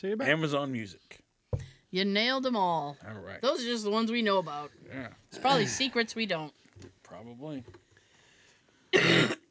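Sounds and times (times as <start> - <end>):
speech: 0.0 - 7.8, 8.9 - 9.4
harsh raspy cough with throat clearing: 8.9 - 9.4.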